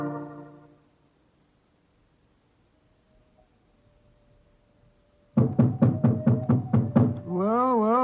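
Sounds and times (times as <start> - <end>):
sharp knocks on a door: 5.3 - 7.3
man's wavering voice: 7.3 - 8.0.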